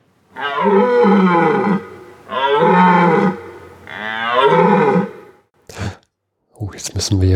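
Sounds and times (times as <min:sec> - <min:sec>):
moose bellowing: 0:00.3 - 0:05.4
speech: 0:00.4 - 0:01.9, 0:07.1 - 0:07.3.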